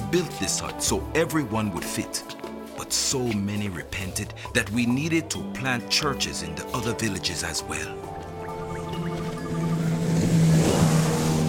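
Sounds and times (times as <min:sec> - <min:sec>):
river water rushing and splashing around the hull: 0:00.0 - 0:11.4
speech: 0:00.1 - 0:08.2
small motorboat engine droning travelling up a river: 0:07.3 - 0:11.4.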